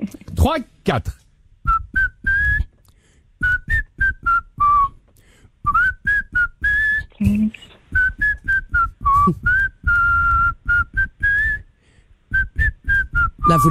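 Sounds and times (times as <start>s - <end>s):
speech: 0.1s - 1.2s
man whistling a bouncy pop melody: 1.6s - 2.7s, 3.4s - 5.0s, 5.6s - 11.7s, 12.3s - 13.6s.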